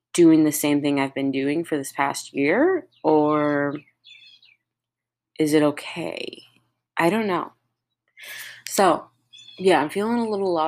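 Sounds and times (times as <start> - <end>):
speech: 0.2 - 3.9, 5.4 - 7.6, 8.2 - 10.6
bright bird chirp: 1.9 - 5.0, 7.5 - 10.6.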